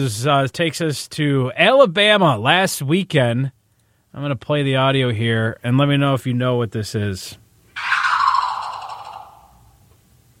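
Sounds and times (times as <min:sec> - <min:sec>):
speech: 0:00.0 - 0:07.9
person imitating a bird call in a bird-call imitation contest in Alabama: 0:07.8 - 0:09.7.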